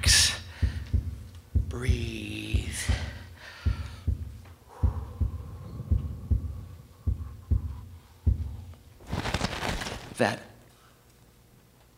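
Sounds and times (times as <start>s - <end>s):
heavy low heartbeat of a frightened person inside a tent: 0.0s - 9.0s
faint hum: 0.0s - 11.9s
speech: 1.8s - 2.2s, 10.2s - 10.5s
brief noisy rustle: 9.0s - 10.3s.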